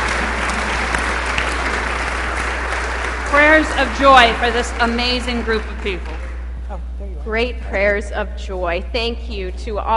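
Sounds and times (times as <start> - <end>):
church audience applauding: 0.0 - 6.5
speech: 3.3 - 6.2, 7.3 - 9.9.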